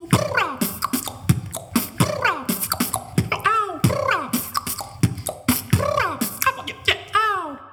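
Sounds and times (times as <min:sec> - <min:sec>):
beatbox melody: 0:00.0 - 0:07.7.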